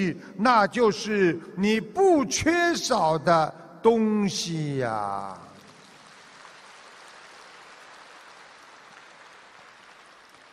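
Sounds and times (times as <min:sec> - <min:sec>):
speech: 0:00.0 - 0:05.4
sparse applause from an audience at a talk: 0:05.6 - 0:10.5.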